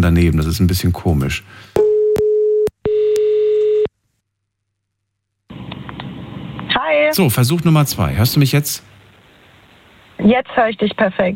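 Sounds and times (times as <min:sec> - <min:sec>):
speech: 0:00.1 - 0:01.8, 0:07.0 - 0:08.9, 0:10.2 - 0:11.3
low-pitched electronic telephone tone while calling someone back: 0:01.8 - 0:03.9.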